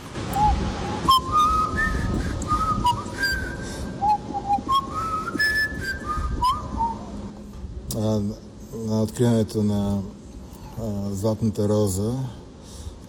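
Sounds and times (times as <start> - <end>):
low rumble: 0.0 - 13.0
person mouth-whistling a short melodic signal call: 0.3 - 7.1
speech: 9.1 - 10.2, 10.8 - 12.4.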